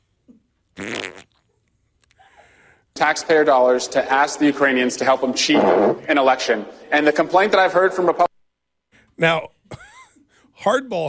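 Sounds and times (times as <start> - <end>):
fart: 0.8 - 1.5
speech: 3.0 - 8.3, 9.2 - 9.8, 10.6 - 11.0.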